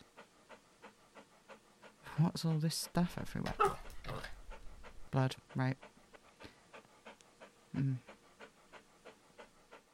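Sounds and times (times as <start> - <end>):
dog panting: 0.0 - 9.9
speech: 2.2 - 4.3, 5.1 - 5.9, 7.8 - 8.1
dog whining: 3.5 - 4.4.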